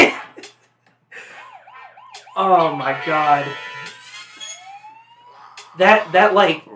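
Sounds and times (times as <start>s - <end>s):
wavering siren-like tones: 1.3s - 6.6s
speech: 2.4s - 3.7s, 5.8s - 6.7s
brassy blasts: 2.6s - 4.2s
very high squeaky mini trumpet note: 2.8s - 4.8s.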